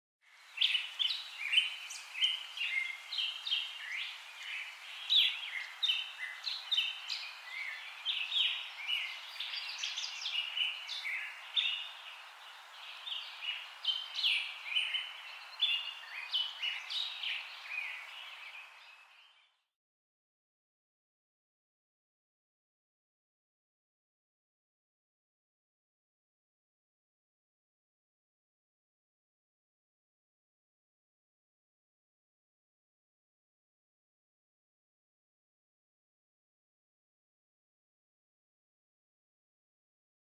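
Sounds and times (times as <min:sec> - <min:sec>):
bird singing: 0:00.3 - 0:19.7.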